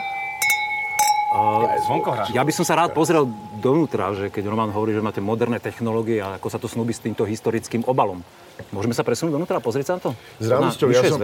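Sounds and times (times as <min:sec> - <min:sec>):
wine glasses clinking in a toast: 0:00.0 - 0:05.1
speech: 0:01.9 - 0:11.2.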